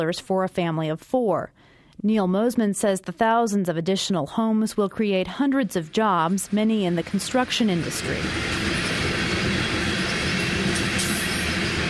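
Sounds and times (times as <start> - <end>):
speech: 0.0 - 8.8
train rolling past on a track beside an industrial park in Lincoln: 6.3 - 11.8.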